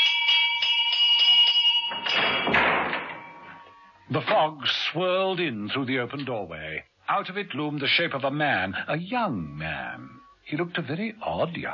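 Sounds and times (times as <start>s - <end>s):
front doorbell ringing with bright metallic strikes: 0.0s - 4.2s
speech: 4.1s - 11.7s.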